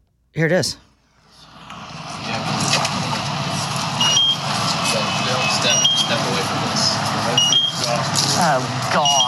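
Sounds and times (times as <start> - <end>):
indistinct voices: 0.5 - 9.2
steady outdoor noise: 1.2 - 9.2
gas meter warning alarm beeping outside the door of a house: 4.0 - 4.5, 5.2 - 6.3, 7.3 - 7.8, 9.0 - 9.2.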